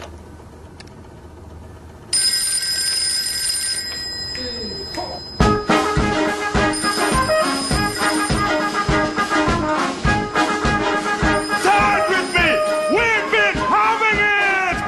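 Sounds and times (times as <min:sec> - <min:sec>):
electronic mobile phone ringtone trilling: 0:02.1 - 0:09.8, 0:11.2 - 0:13.3
live band playing an upbeat melody in an advertisement: 0:05.4 - 0:14.6
punchy rhythmic drum hits: 0:05.4 - 0:14.8.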